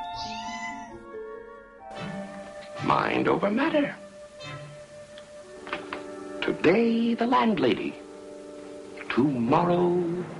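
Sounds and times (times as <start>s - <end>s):
cat meowing: 0.0s - 1.0s
speech: 2.8s - 4.0s, 6.6s - 8.0s, 9.2s - 10.3s.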